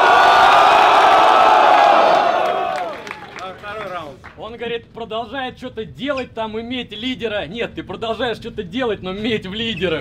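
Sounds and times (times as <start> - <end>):
audience cheering and shouting for a contestant: 0.0 - 3.5
speech: 4.6 - 9.9.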